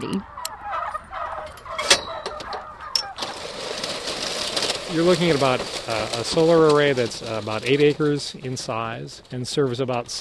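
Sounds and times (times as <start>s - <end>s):
speech: 0.0s - 0.4s, 4.9s - 10.1s
hundreds of heavy turkey toms gobbling inside a barn outside Sacramento California: 0.0s - 8.8s.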